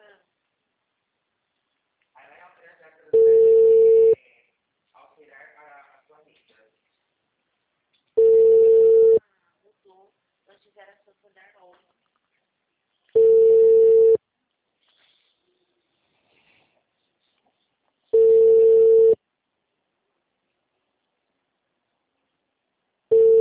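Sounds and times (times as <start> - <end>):
telephone ringback tone on a call: 3.2 - 4.2, 8.2 - 9.2, 13.2 - 14.2, 18.2 - 19.2, 23.1 - 23.4.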